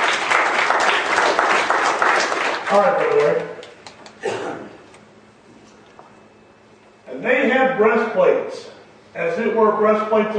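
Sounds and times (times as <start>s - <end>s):
church congregation applauding: 0.0s - 4.0s
speech: 2.7s - 3.6s, 7.2s - 10.3s.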